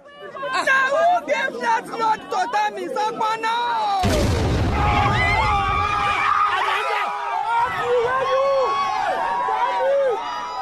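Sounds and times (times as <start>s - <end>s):
crowd chatter at a political rally: 0.0s - 10.5s
people shouting: 3.4s - 10.5s
bomb explosion with a deep rumble: 4.0s - 6.1s.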